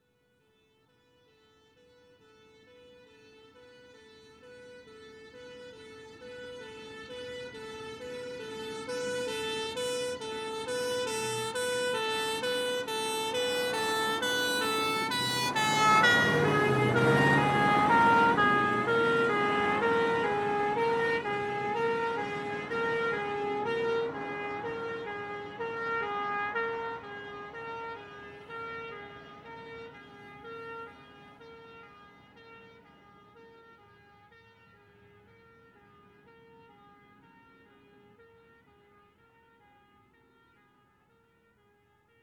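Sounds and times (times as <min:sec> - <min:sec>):
fire engine passing right to left with revving engine in emergency: 0:02.7 - 0:33.4.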